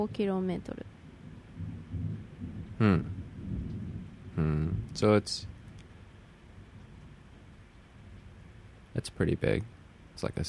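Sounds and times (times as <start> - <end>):
speech: 0.0 - 1.0, 2.8 - 3.2, 4.4 - 5.5, 9.0 - 10.4
sharp loud thunder crack from a thunderstorm: 0.0 - 5.8
thunder rumbling from a thunderstorm: 0.0 - 8.8.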